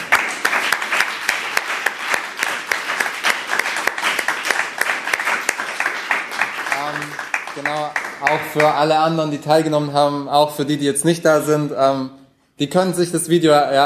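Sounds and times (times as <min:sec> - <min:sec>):
audience applause for competition winners: 0:00.0 - 0:09.1
speech: 0:07.6 - 0:13.8.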